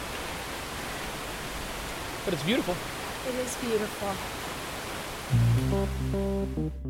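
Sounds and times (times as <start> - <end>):
waterfall roaring during a rainstorm: 0.0 - 6.0
pouring rain: 0.0 - 6.7
speech: 2.3 - 4.5, 5.3 - 6.8
musical tone: 5.3 - 6.8.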